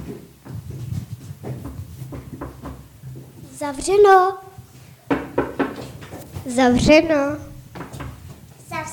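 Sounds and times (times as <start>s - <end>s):
dull knocks on a door: 1.5s - 3.3s, 5.1s - 6.2s, 6.7s - 8.2s
speech: 3.6s - 4.5s, 6.5s - 7.5s.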